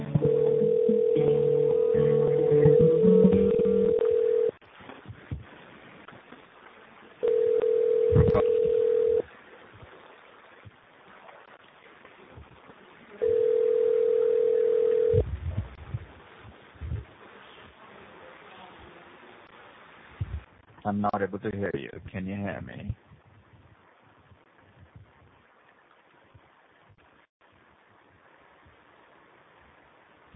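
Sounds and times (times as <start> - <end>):
telephone tones while a call is being connected: 0.2 - 4.5, 7.2 - 9.3, 13.2 - 15.2
speech: 20.9 - 23.1.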